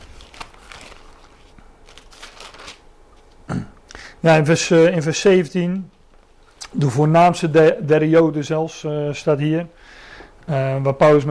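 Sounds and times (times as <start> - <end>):
pages of a Bible being turned: 0.0 - 3.4
speech: 4.2 - 6.0, 6.8 - 11.2.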